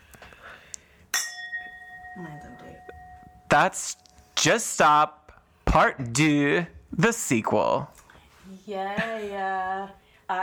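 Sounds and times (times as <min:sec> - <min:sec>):
glasses clinking in a toast: 0:01.1 - 0:04.2
speech: 0:03.6 - 0:10.4.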